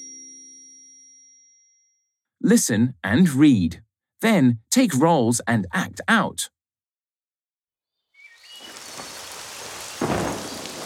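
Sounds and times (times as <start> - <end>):
speech: 2.5 - 6.6
steady rain pouring down: 8.2 - 10.8
thunder rumbling: 8.7 - 10.8.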